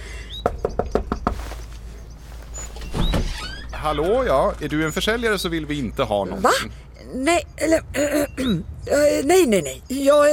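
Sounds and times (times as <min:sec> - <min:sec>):
faint bird chirps: 0:00.0 - 0:10.3
firm knocking on a door: 0:00.4 - 0:01.5
speech: 0:03.8 - 0:10.3.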